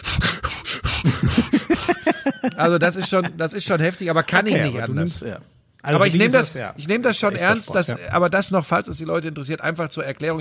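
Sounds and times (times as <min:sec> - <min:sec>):
voice imitating heavy panting while walking uphill: 0:00.0 - 0:02.2
laughter: 0:01.3 - 0:04.5
speech: 0:02.4 - 0:10.3.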